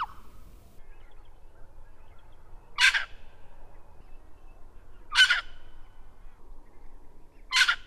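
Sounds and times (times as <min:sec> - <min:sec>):
red wattlebird giving harsh raspy coughing notes: 0:00.0 - 0:00.4, 0:02.8 - 0:03.3, 0:05.1 - 0:06.0, 0:07.5 - 0:07.8.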